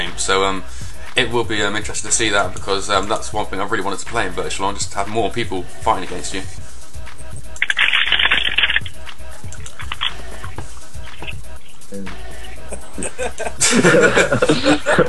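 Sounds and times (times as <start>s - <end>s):
speech: 0.2s - 6.7s, 13.2s - 15.0s
crackling keyboard crunches: 7.3s - 11.9s
faint chuckling: 12.7s - 15.0s.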